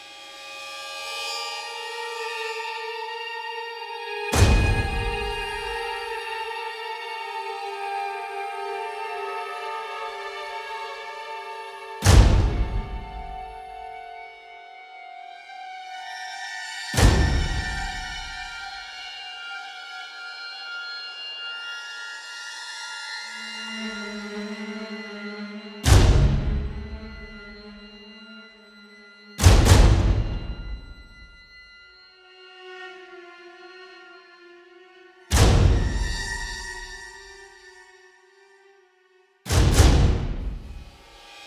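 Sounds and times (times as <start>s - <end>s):
suspense music loop in classic horror sci-fi style: 4.4s - 6.3s, 12.0s - 14.0s, 17.0s - 18.7s, 24.3s - 28.7s, 29.3s - 31.5s, 35.3s - 37.3s, 39.5s - 41.1s.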